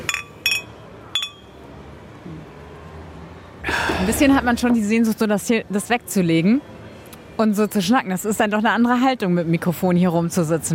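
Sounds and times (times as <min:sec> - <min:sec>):
beer glasses clinking together in a toast in a bar: 0:00.0 - 0:01.6
speech: 0:04.0 - 0:06.7, 0:07.4 - 0:10.7.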